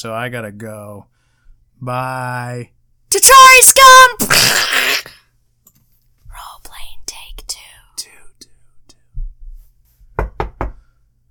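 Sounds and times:
speech: 0.0s - 1.2s, 1.8s - 5.2s
light taps and soft thuds: 9.1s - 10.8s
knocks on a wooden table: 10.2s - 10.8s.

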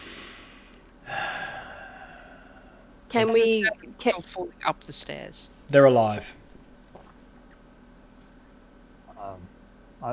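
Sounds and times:
slow quiet breathing of resting creatures: 0.0s - 3.0s
speech: 3.1s - 6.4s.

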